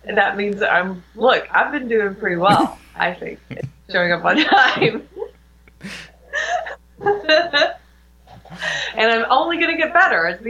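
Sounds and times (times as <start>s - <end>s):
speech: 0.1s - 5.2s, 5.8s - 7.8s, 8.5s - 10.4s
person yawning while stretching: 2.5s - 3.7s.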